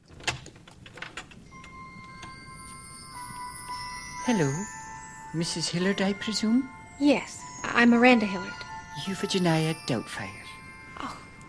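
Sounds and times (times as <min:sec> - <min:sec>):
front door in a house entryway rattling and clicking open: 0:00.0 - 0:02.4
wind chimes ringing: 0:01.4 - 0:11.4
speech: 0:04.3 - 0:10.4.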